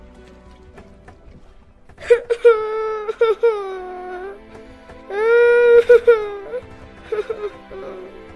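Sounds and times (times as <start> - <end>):
young girl crying and sobbing: 2.0 - 4.5, 5.1 - 8.2.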